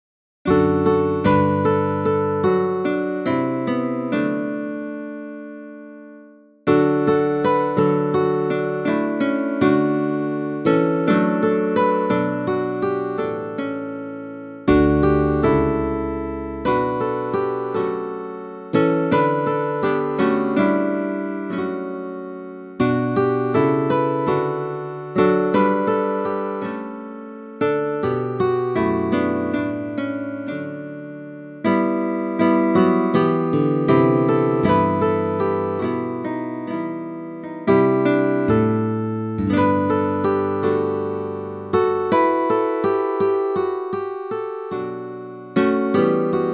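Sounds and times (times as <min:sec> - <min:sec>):
guitar playing: 0:00.5 - 0:05.7, 0:06.7 - 0:46.5.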